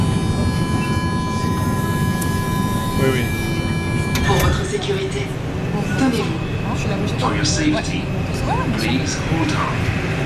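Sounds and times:
whining tone from a moving metro train: 0.0 - 5.0
rumble from inside a moving metro train: 0.0 - 10.2
speech: 3.0 - 3.4, 7.2 - 10.0.

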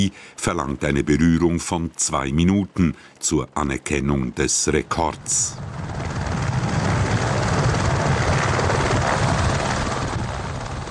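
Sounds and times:
speech: 0.0 - 6.2
helicopter flying: 4.9 - 10.8.

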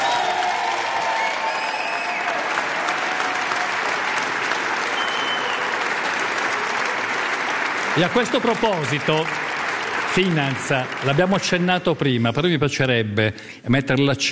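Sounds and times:
faint cheers and whistles from a studio audience: 0.0 - 4.2, 4.8 - 6.1
live studio audience applauding at a live radio broadcast: 0.0 - 12.2
speech: 8.0 - 9.5, 10.1 - 14.2.

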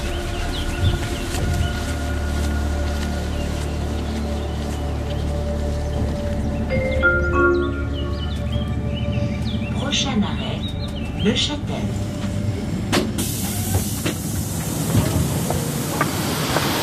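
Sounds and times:
car engines idling: 0.0 - 16.8
speech: 11.3 - 11.6.

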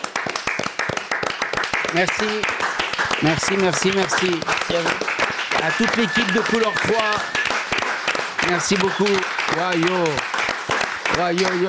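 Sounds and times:
room full of people applauding: 0.0 - 11.6
speech: 1.9 - 2.6, 3.2 - 7.4, 8.4 - 10.3, 11.1 - 11.6
short cheer or voiced shout: 5.6 - 10.2.

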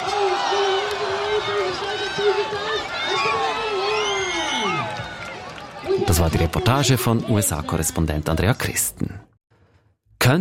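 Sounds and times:
shouts and whoops from a crowd: 0.0 - 6.2
crowd cheering at a pig race: 0.0 - 7.8
speech: 6.2 - 9.3.

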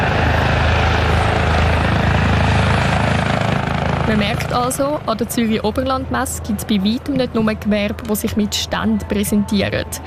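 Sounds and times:
helicopter rotor thumping: 0.0 - 6.2
helicopter engine drone: 0.0 - 10.0
speech: 4.1 - 10.0.

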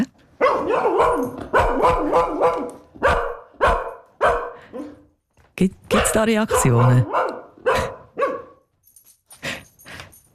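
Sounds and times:
recording of a dog barking played back: 0.4 - 5.1, 5.9 - 8.7
speech: 5.6 - 7.3.

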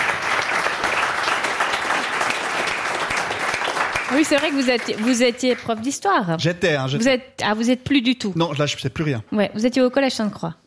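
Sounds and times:
audience applause: 0.0 - 5.9
speech: 4.1 - 10.6.

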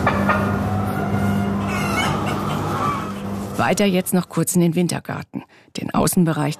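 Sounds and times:
crowd of chickens clucking indoors in a barn: 0.0 - 3.6
speech: 3.6 - 6.5.

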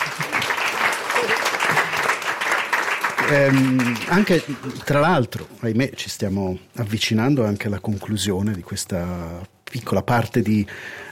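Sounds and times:
audience applause: 0.0 - 5.1
speech: 3.3 - 11.1.

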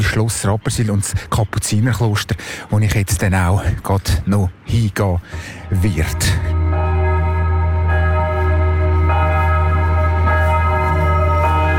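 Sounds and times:
speech: 0.0 - 6.6
church bells in Rapperswil ringing: 5.4 - 11.7.

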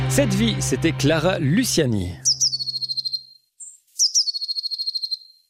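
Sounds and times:
speech: 0.1 - 2.2
blue tit singing: 2.3 - 5.4.

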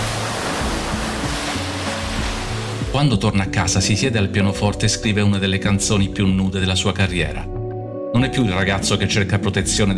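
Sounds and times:
ocean surf washing onto a shore: 0.0 - 3.0
speech: 3.0 - 7.5, 8.1 - 9.9.

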